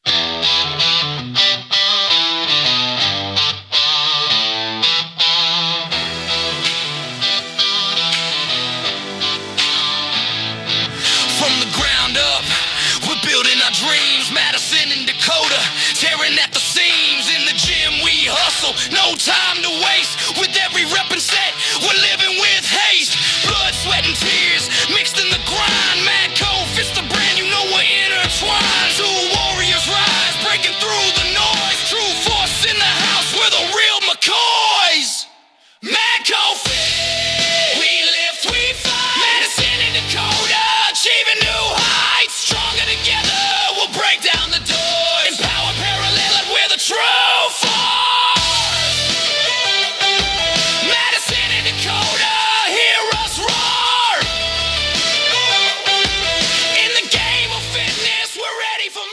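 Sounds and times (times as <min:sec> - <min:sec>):
angry anthem music: 0:00.0 - 0:59.1.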